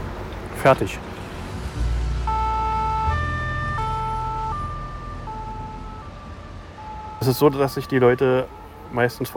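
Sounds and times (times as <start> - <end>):
low rumble of engine: 0.0 - 9.3
street traffic: 0.0 - 9.3
speech: 0.6 - 1.1, 7.2 - 9.3
ambulance siren alternating between two tones: 1.8 - 9.3.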